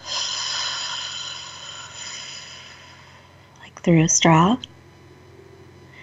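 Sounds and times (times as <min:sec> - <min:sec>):
deep breath in nose, out mouth: 0:00.0 - 0:03.5
speech: 0:03.8 - 0:04.7.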